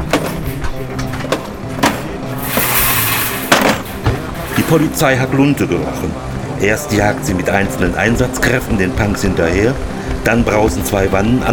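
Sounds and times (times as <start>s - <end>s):
clattering and hollow thuds of a portable toilet unloaded from a sanitation truck: 0.0s - 4.9s
scraping: 0.0s - 5.0s
speech: 4.7s - 11.5s.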